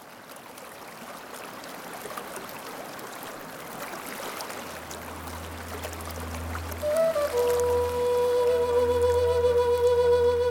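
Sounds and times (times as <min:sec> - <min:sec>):
Anzu River water flowing in the Ecuadorian Amazon: 0:00.0 - 0:10.4
thin sustained tones humming: 0:04.9 - 0:10.4.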